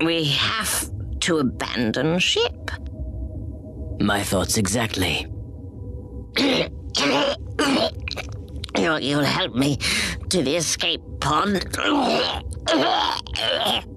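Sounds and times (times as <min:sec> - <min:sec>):
speech: 0:00.0 - 0:02.8, 0:04.0 - 0:05.3, 0:06.4 - 0:13.9
hacking coughs: 0:06.4 - 0:08.2.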